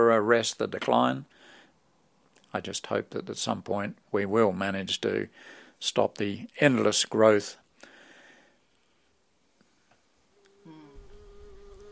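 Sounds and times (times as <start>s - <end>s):
speech: 0.0s - 1.4s, 2.5s - 7.6s
native bees buzzing around a flower: 10.4s - 11.9s.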